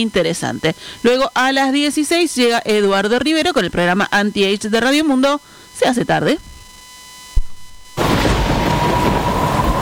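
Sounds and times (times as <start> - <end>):
speech: 0.0 - 6.5
low thud: 7.4 - 9.8
heavy rain from a storm in cold weather: 8.0 - 9.8.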